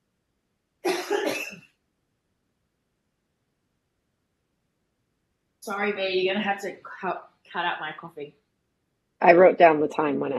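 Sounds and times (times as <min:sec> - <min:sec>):
person coughing after COVID: 0:00.9 - 0:01.6
speech: 0:05.6 - 0:08.4, 0:09.2 - 0:10.3.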